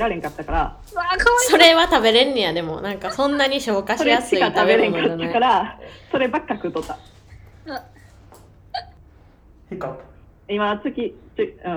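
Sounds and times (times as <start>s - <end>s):
speech: 0.0s - 8.0s, 9.7s - 11.7s
laughter: 0.0s - 9.0s
steady low hum: 0.0s - 11.7s
hiccups: 4.0s - 9.0s.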